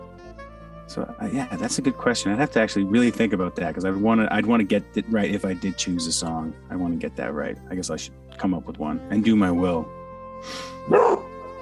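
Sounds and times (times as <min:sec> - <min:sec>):
speech: 0:00.9 - 0:11.2
dog barking: 0:10.9 - 0:11.3.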